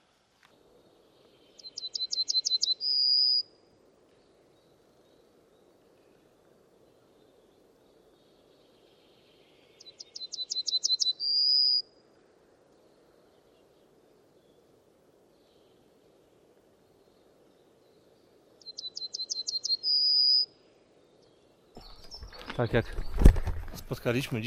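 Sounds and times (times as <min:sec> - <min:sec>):
yellowhammer singing: 0:01.3 - 0:03.5, 0:06.9 - 0:11.9, 0:16.8 - 0:24.4
speech: 0:22.6 - 0:23.3, 0:23.9 - 0:24.4.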